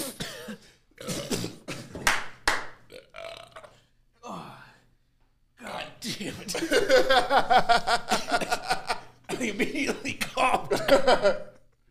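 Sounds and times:
wet sputtering coughs after chugging beer: 0.0s - 2.0s, 9.3s - 11.4s
speech: 6.1s - 8.2s, 9.4s - 11.5s
laughter: 6.4s - 11.6s.

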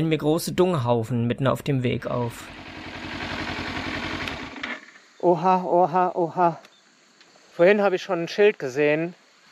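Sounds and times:
speech: 0.0s - 2.7s, 5.2s - 6.7s, 7.6s - 9.2s
motorcycle engine idling while stopped before a water hole on a bush-lined track: 2.0s - 5.2s.

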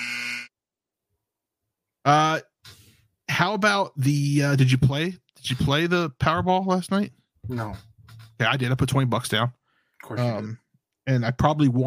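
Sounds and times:
buzzer tone: 0.0s - 0.5s
speech: 2.0s - 2.5s, 3.4s - 11.8s.

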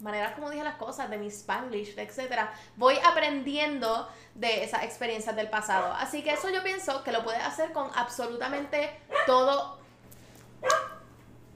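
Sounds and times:
speech: 0.0s - 9.8s
quiet hum: 0.0s - 11.5s
dog bark: 5.8s - 6.6s, 9.1s - 9.5s, 10.6s - 11.1s.

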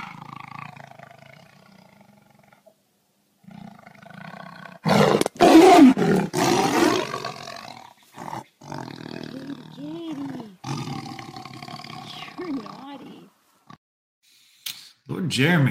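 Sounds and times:
tiger roaring: 0.0s - 2.7s, 3.4s - 13.1s.

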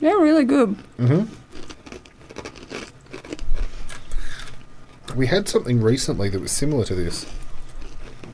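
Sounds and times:
speech: 0.0s - 1.4s, 5.2s - 7.4s
crunching garlic-flavoured snack like large flat croutons: 0.8s - 5.0s, 7.0s - 8.3s
mouth noise: 1.0s - 1.4s.

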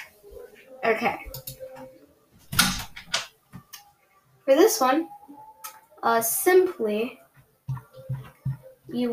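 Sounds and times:
speech: 0.9s - 1.5s, 4.5s - 5.1s, 6.0s - 7.2s, 8.9s - 9.1s
door being shut: 2.5s - 3.3s.

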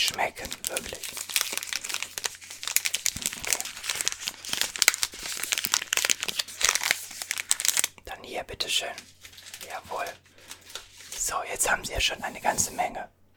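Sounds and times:
speech: 0.0s - 1.4s, 8.4s - 10.3s, 11.3s - 13.2s
plastic wafer bar wrappers crinkling: 0.0s - 8.0s, 8.8s - 11.4s.

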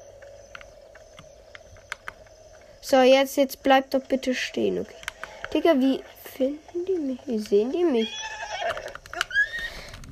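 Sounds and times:
speech: 2.8s - 8.9s
horse whinnying shrilly: 7.9s - 9.9s.

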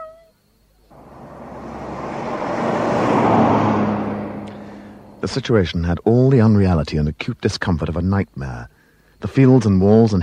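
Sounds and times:
Lagonda car driving along a country road: 0.9s - 6.2s
speech: 5.2s - 10.2s.

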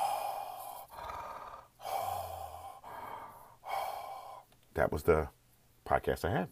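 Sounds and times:
respirator breathing played as a phone ringtone: 0.0s - 4.5s
speech: 4.8s - 6.5s.

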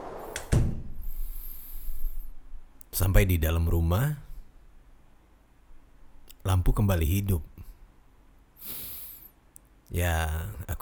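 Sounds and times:
house door swinging shut with a solid thud: 0.0s - 2.1s
speech: 3.0s - 4.3s, 6.4s - 7.5s, 9.9s - 10.8s.

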